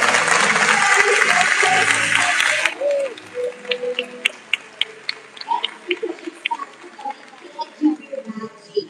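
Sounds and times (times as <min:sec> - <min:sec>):
crowd applauding: 0:00.0 - 0:08.8
murmur of voices: 0:00.0 - 0:08.8.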